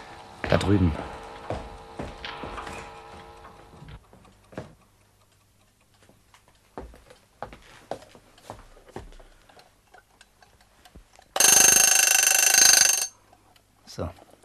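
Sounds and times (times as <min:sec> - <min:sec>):
speech: 0:00.6 - 0:01.2
alarm clock being handled and set in a bedroom: 0:01.8 - 0:07.4, 0:08.0 - 0:14.4
alarm clock ringing in a bedroom: 0:11.4 - 0:13.2.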